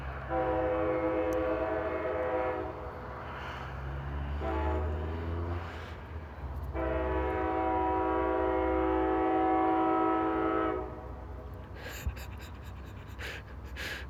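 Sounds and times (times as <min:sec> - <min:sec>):
deep train horn blasts at crossings without proper barriers: 0:00.2 - 0:03.3, 0:04.0 - 0:05.7, 0:06.6 - 0:11.4
laughter: 0:11.6 - 0:14.0.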